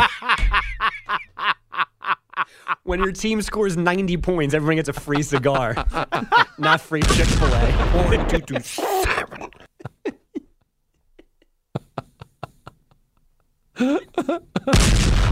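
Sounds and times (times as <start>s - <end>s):
laughter: 0.0s - 3.0s, 4.8s - 13.2s, 13.8s - 14.8s
speech: 0.1s - 1.5s, 2.9s - 9.0s
loud booming cannon-like blasts: 7.0s - 8.5s, 14.7s - 15.2s
quick series of sharp cracks: 7.0s - 8.6s, 14.8s - 15.2s.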